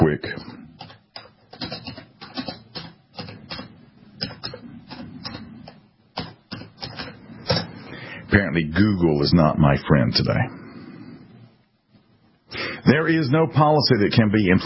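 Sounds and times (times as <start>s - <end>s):
typing on a computer keyboard: 0.8s - 7.2s
speech: 8.3s - 10.6s, 12.9s - 14.6s.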